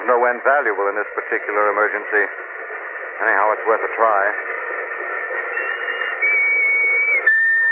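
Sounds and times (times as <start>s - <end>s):
hissy crackling background: 0.0s - 7.7s
speech: 0.1s - 4.8s
shrill whistle blown in a long steady blast: 5.5s - 7.7s.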